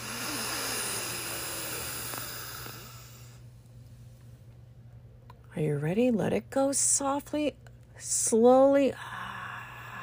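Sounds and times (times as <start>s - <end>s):
big fresh inhale in a breathing exercise: 0.0s - 3.5s
speech: 5.6s - 9.2s.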